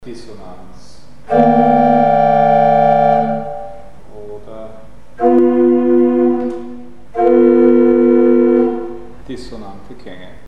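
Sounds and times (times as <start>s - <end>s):
dissonant chords: 1.2s - 4.1s, 4.8s - 9.2s.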